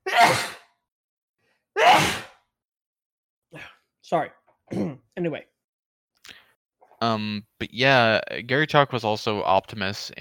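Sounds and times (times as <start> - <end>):
person sneezing: 0.0 - 0.7, 1.8 - 2.4
speech: 3.5 - 5.5, 7.0 - 10.1.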